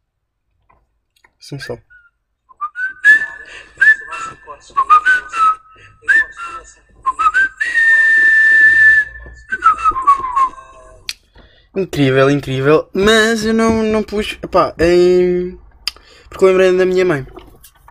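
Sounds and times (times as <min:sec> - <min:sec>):
speech: 0:01.4 - 0:01.9, 0:11.8 - 0:15.6, 0:16.3 - 0:17.4
person whistling a lively intro tune: 0:01.9 - 0:10.9.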